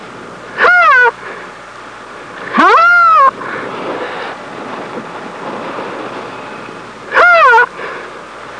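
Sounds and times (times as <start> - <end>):
rhino calf calling: 0.6 - 1.2, 2.5 - 3.3, 7.1 - 7.7.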